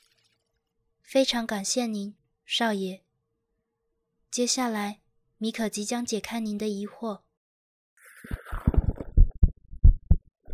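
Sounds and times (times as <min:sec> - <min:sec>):
speech: 0:01.1 - 0:03.0, 0:04.3 - 0:07.2
internal body gurgles: 0:08.0 - 0:09.3
human heartbeat in lub-dub pairs: 0:08.4 - 0:10.5.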